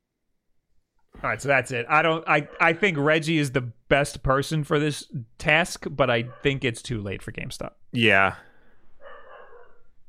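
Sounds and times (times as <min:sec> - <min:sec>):
speech: 0:01.2 - 0:08.5
dog barking in a room: 0:02.4 - 0:02.8, 0:06.2 - 0:06.6, 0:09.0 - 0:10.0.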